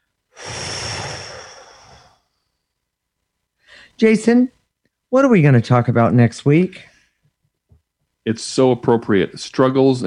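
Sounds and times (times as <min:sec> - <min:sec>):
deep breath out during a guided relaxation: 0:00.3 - 0:02.6, 0:03.6 - 0:04.0
speech: 0:04.0 - 0:06.9, 0:08.2 - 0:10.0.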